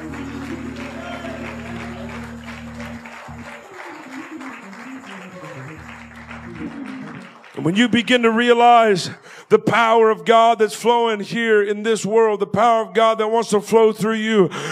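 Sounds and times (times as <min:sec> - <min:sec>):
low held organ-like tones: 0:00.0 - 0:08.0
audience clapping to magnify the Lord at a preacher's call: 0:00.0 - 0:09.3
speech: 0:07.6 - 0:14.7.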